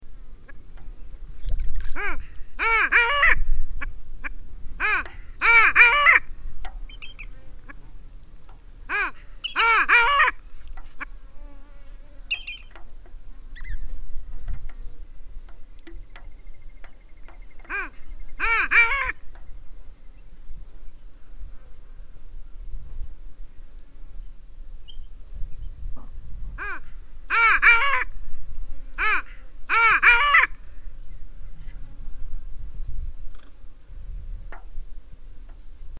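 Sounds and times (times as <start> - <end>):
long-tailed duck calling: 1.8 - 8.0, 8.9 - 11.2, 12.3 - 12.8, 17.3 - 19.3, 26.6 - 28.2, 29.0 - 30.6.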